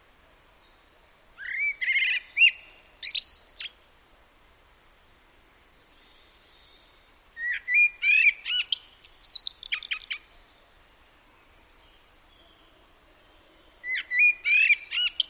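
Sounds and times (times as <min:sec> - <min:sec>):
common blackbird singing: 0:01.4 - 0:03.8, 0:07.4 - 0:10.4, 0:13.8 - 0:15.2.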